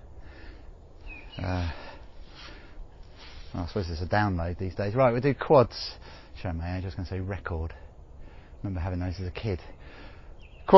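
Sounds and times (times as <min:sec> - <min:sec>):
bird chirp: 0:00.0 - 0:02.6, 0:08.2 - 0:10.7
steady outdoor hiss: 0:00.0 - 0:10.7
speech: 0:01.4 - 0:01.8, 0:03.5 - 0:07.8, 0:08.6 - 0:10.0.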